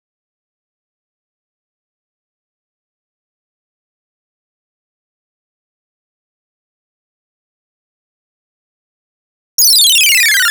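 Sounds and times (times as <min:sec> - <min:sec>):
complex electro synth effects in D sharp minor: 0:09.6 - 0:10.4.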